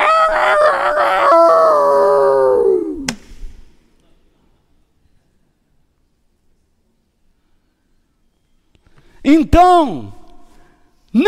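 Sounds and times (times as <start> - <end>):
person imitating a rooster crowing: 0.0 - 3.1
sharp click: 3.1 - 3.4
speech: 9.5 - 10.2.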